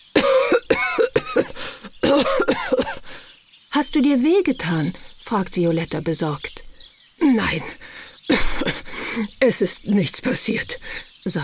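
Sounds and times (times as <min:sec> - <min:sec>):
grandfather coughing hard after leaving a smoke-filled wooden shed: 0:00.2 - 0:03.2, 0:08.3 - 0:09.1
gasping: 0:01.5 - 0:02.0, 0:07.7 - 0:09.4
speech: 0:03.8 - 0:06.5, 0:07.2 - 0:07.8, 0:09.2 - 0:11.4.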